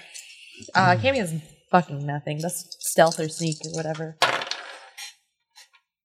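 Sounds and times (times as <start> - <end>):
speech: 0.6 - 4.3
dice dropped and clattering on a hard surface: 2.9 - 5.2.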